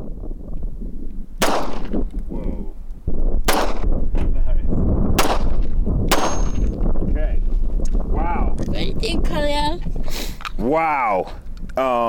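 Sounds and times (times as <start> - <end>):
steady rumble: 0.0 - 10.1
gunshots fired at a coffee cup target: 1.4 - 2.2, 3.4 - 4.0, 5.2 - 6.8
speech: 10.7 - 12.0.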